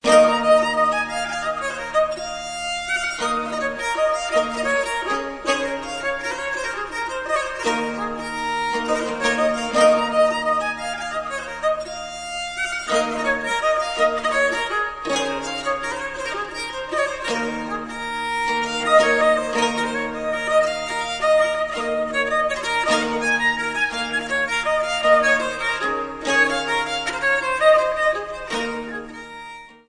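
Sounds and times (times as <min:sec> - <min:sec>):
fidula viola: 0:00.0 - 0:29.8.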